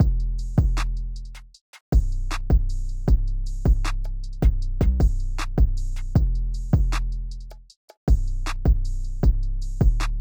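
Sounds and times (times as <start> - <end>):
type beat drums: 0.0 - 0.8, 1.9 - 7.0, 8.1 - 10.0.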